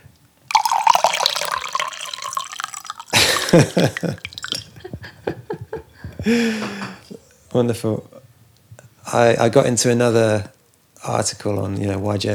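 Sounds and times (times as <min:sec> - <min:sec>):
tea pouring into a cup: 0:00.5 - 0:04.8
laughter: 0:03.1 - 0:07.1
speech: 0:03.5 - 0:04.3, 0:06.2 - 0:06.8, 0:07.6 - 0:08.1, 0:09.1 - 0:12.3.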